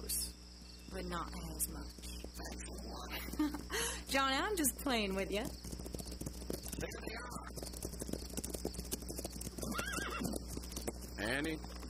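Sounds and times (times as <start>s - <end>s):
speech: 0.9s - 5.8s, 6.8s - 7.8s, 11.2s - 11.8s
horse hooves clip-clopping: 1.3s - 11.8s
horse whinnying: 9.6s - 10.4s.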